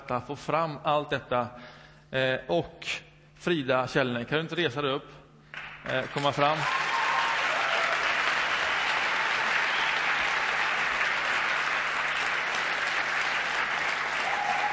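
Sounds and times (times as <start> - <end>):
speech: 0.1 - 6.8
audience applause of many hands clapping: 5.5 - 14.7.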